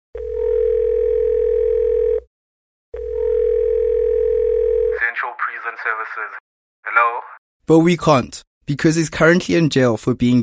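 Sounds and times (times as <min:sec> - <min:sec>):
telephone tone from an outgoing call to Tanzania: 0:00.2 - 0:02.3, 0:03.0 - 0:05.0
speech: 0:06.1 - 0:10.4.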